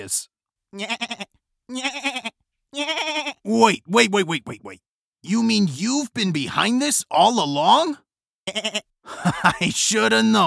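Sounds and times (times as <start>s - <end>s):
speech: 0.0s - 10.4s
goat bleating: 0.7s - 3.5s, 8.4s - 9.0s
laughter: 9.1s - 10.1s.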